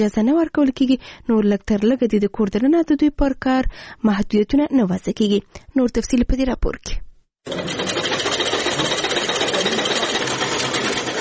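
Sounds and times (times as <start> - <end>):
speech: 0.0 - 8.3
sewing machines running in a tailoring workshop: 7.5 - 11.1.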